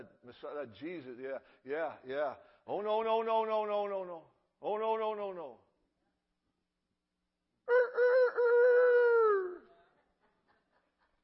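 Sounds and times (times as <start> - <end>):
speech: 0.0 - 5.6
rooster crowing: 7.7 - 9.6.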